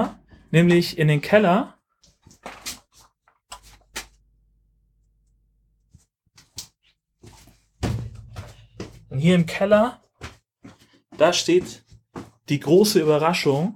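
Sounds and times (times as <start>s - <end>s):
speech: 0.0s - 1.8s, 9.2s - 10.0s, 11.2s - 11.8s, 12.5s - 13.7s
55-inch television in a basement toppling over: 7.8s - 9.0s
knocks and bumps: 7.8s - 9.6s.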